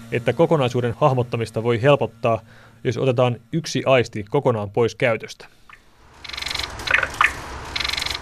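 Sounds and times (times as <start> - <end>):
low hum: 0.0 - 8.2
speech: 0.1 - 5.6
nightingale song played in reverse as an audio beacon at a building entrance: 5.6 - 8.2.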